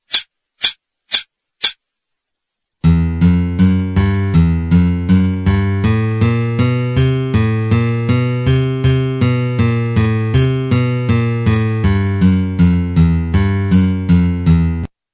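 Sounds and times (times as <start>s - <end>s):
guitar alternate picking: 2.8s - 14.9s.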